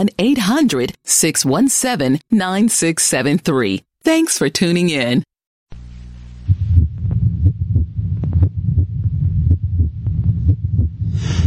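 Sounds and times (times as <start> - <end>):
speech: 0.0 - 5.3
low rumbling hum: 5.7 - 11.4
heartbeat thudding: 6.4 - 11.4.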